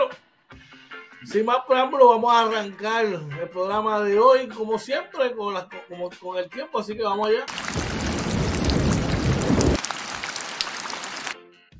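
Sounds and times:
speech: 1.2s - 7.8s
deep loud thunder rumble: 7.5s - 11.3s
heavy rain hissing: 7.5s - 11.4s.

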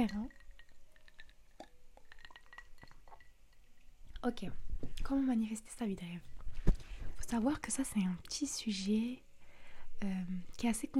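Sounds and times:
speech: 0.0s - 0.4s, 4.2s - 6.3s, 7.2s - 9.2s, 10.0s - 10.9s
ice cubes clinking against a glass: 0.0s - 3.8s
soft liquid sloshing: 0.0s - 3.9s
someone sipping a cold drink: 0.3s - 3.3s.

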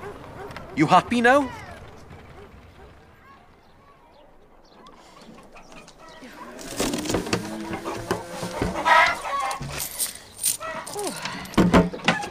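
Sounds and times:
speech: 0.8s - 1.6s
chicken clucking: 5.0s - 9.6s
clattering and rustling: 5.2s - 12.2s.

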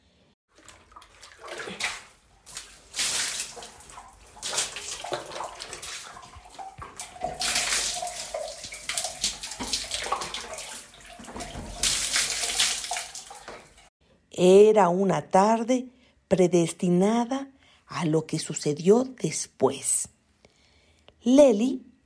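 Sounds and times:
icy well water splashing and sloshing as girls bathe: 0.5s - 13.9s
speech: 14.4s - 20.1s, 21.2s - 21.9s.

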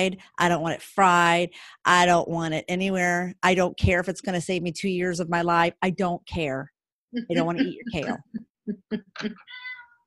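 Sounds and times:
speech: 0.0s - 9.7s
cat chirping and meowing: 9.4s - 10.0s.

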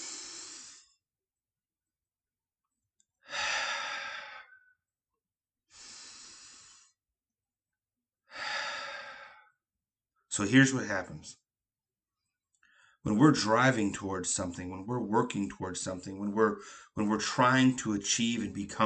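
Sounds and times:
deep breathing during a relaxation exercise: 0.0s - 1.0s, 3.2s - 4.8s, 5.7s - 7.0s, 8.3s - 9.6s, 12.6s - 13.0s, 16.6s - 17.0s
speech: 10.4s - 11.4s, 13.0s - 18.8s.

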